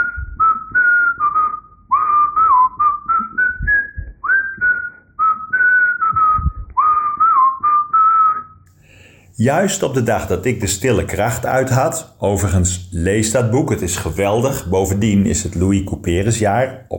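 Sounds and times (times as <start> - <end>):
person whistling a melody: 0.0 - 8.6
speech: 9.4 - 16.9.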